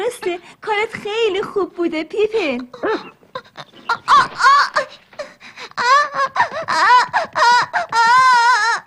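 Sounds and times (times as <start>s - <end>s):
speech: 0.1s - 5.0s
young child wailing and sobbing: 2.8s - 8.8s.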